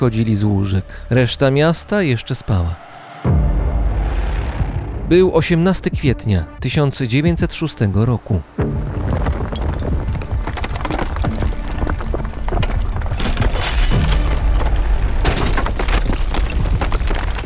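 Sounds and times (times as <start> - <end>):
speech: 0.0 - 3.4, 5.1 - 8.9
deep continuous earthquake rumble: 0.2 - 6.6, 8.5 - 17.4
heavy booms and crashing debris from collapsing walls: 8.8 - 17.4
glass shattering: 13.2 - 17.4.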